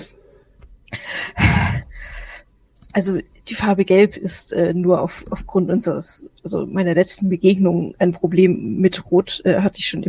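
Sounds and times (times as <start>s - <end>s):
person taking deep breaths: 0.9s - 2.5s
speech: 3.0s - 10.0s.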